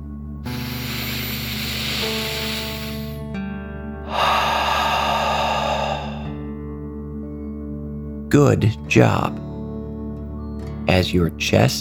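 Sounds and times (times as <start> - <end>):
deep breath in and out as a calming dragon fire-breathing exercise: 0.5 - 3.3, 4.0 - 6.7
speech: 8.3 - 9.5, 10.9 - 11.7.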